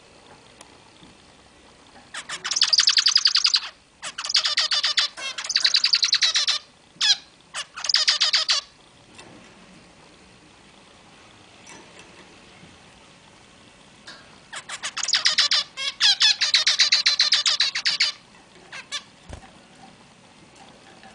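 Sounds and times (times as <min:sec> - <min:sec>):
zebra finch song with buzzy nasal notes: 0:02.0 - 0:08.7, 0:14.1 - 0:19.2.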